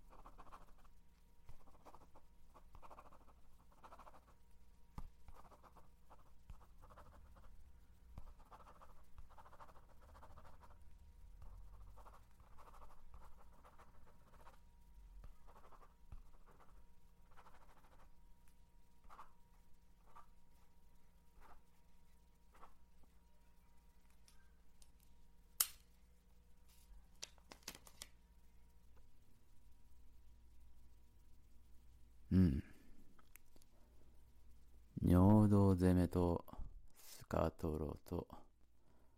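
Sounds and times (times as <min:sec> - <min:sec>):
pen scratching on paper filling in a questionnaire: 0:00.0 - 0:04.4, 0:05.0 - 0:10.8, 0:11.4 - 0:18.1, 0:19.0 - 0:19.3, 0:21.3 - 0:21.8, 0:22.5 - 0:22.8
steady low hum: 0:00.0 - 0:39.1
speech: 0:35.8 - 0:36.5, 0:37.3 - 0:38.4.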